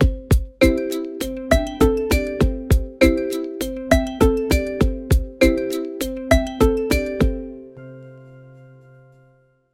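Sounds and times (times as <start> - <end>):
happy electronic pop beat: 0.0 - 7.5.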